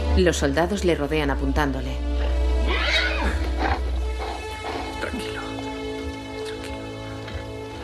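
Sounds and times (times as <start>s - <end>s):
speech: 0.2s - 2.4s
low rumble of horses ridden by soldiers: 2.1s - 6.3s
horse whinnying: 2.6s - 5.6s.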